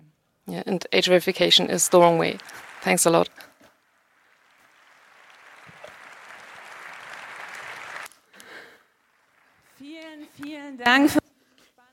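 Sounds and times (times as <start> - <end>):
speech: 0.5 - 3.4
audience clapping: 1.0 - 10.5.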